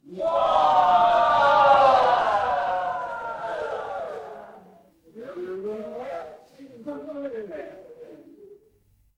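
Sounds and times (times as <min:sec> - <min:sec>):
crowd cheering: 0:00.0 - 0:04.9.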